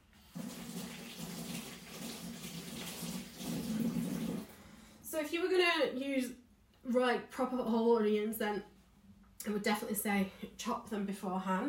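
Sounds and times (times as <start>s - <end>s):
tap water running as hands are washed in a kitchen: 0.0s - 4.5s
speech: 5.2s - 8.7s, 9.4s - 11.6s.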